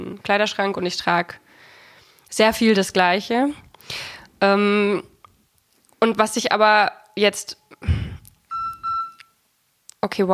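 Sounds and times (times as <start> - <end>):
speech: 0.0 - 1.4, 2.3 - 5.1, 6.0 - 8.0, 10.0 - 10.3
mobile phone electronic alert beeps: 8.5 - 9.4.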